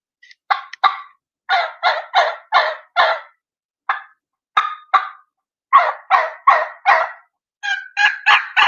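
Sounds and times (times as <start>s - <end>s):
turkey call making raspy jake yelps: 0.5s - 8.6s.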